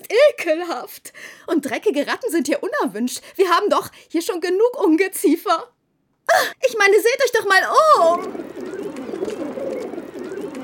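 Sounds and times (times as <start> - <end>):
speech: 0.1 - 8.6
pigeons cooing around a dirty school: 7.7 - 10.6.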